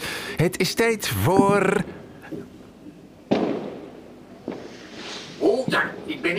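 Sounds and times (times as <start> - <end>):
speech: 0.4 - 2.5
fireworks crackling and banging on an old cassette recording: 3.3 - 5.8.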